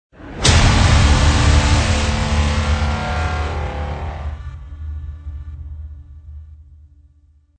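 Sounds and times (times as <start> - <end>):
epic trailer intro ident hit: 0.2 - 5.8.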